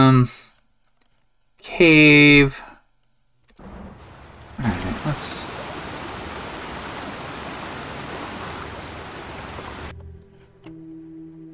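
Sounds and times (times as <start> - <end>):
speech: 0.1 - 0.4, 1.6 - 2.7, 4.6 - 5.6
waterfall pouring into a stream: 3.6 - 9.9.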